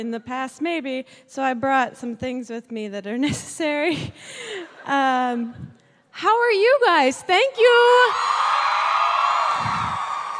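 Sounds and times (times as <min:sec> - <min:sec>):
speech: 0:00.0 - 0:08.4
live audience screaming and cheering: 0:08.1 - 0:10.3.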